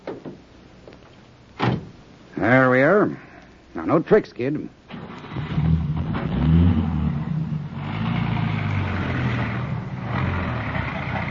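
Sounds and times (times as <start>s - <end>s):
police radio car door slamming shut: 1.6s - 1.9s
speech: 2.4s - 3.2s, 3.8s - 4.8s
police radio car engine revving and driving off: 4.9s - 11.2s.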